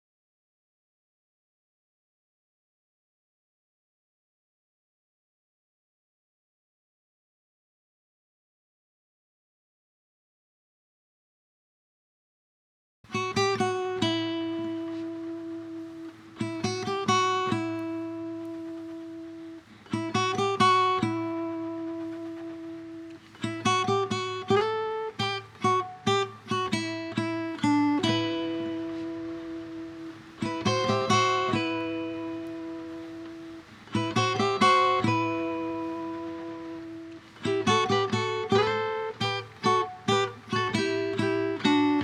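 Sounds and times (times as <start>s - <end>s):
137 BPM lead guitar in E minor: 13.1s - 42.0s.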